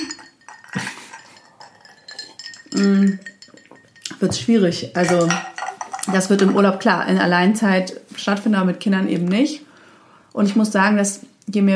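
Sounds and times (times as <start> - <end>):
glasses clinking together in a toast: 0.0 - 6.9
speech: 2.7 - 3.3, 4.2 - 5.5, 6.1 - 9.7, 10.4 - 11.7.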